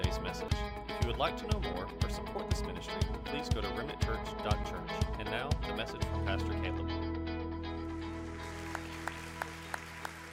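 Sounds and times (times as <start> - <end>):
sustained organ-like music: 0.0 - 10.3
speech: 0.3 - 7.1
crowd clapping in time: 8.0 - 10.3.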